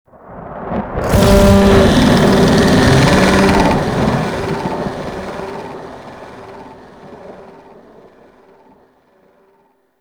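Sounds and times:
sun monster bellow: 0:01.0 - 0:06.9.

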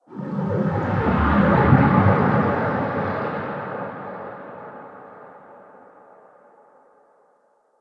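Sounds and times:
exterior space ambience waves: 0:00.0 - 0:06.0.

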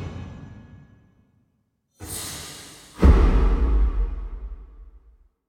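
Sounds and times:
cinematic sword stab in a courtyard: 0:03.0 - 0:05.1.

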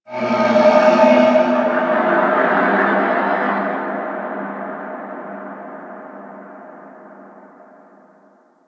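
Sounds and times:
ambience: 0:00.0 - 0:08.6
large moon creature sound: 0:00.1 - 0:06.4.

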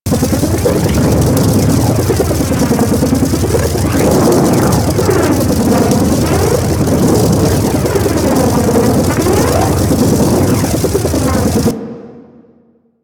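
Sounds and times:
charged ring loop: 0:00.1 - 0:11.7.

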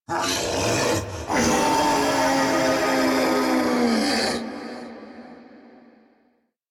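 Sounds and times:
wolf howl: 0:00.1 - 0:04.8.

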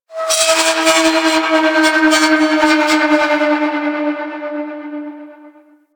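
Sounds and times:
metal groans and scrapes: 0:00.2 - 0:04.6.

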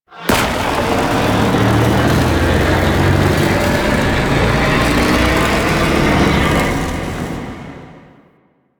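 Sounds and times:
void dragon orb charge ability effect: 0:00.2 - 0:07.0.

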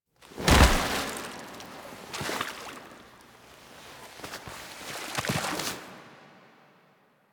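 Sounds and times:
foley body fall: 0:00.2 - 0:03.0.

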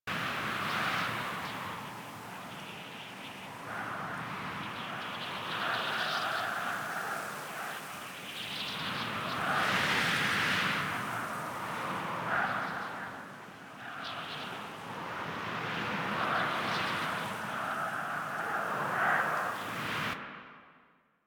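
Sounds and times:
night wind in large grass: 0:00.1 - 0:20.8.

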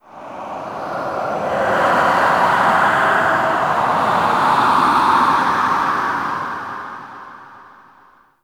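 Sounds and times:
low wind gust: 0:00.0 - 0:08.1.

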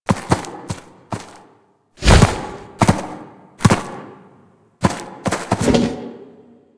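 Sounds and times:
ram lunging forward: 0:00.0 - 0:04.2, 0:04.8 - 0:06.0.

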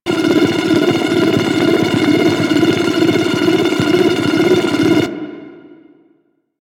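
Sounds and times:
shock rifle projectile loop: 0:00.1 - 0:05.2.

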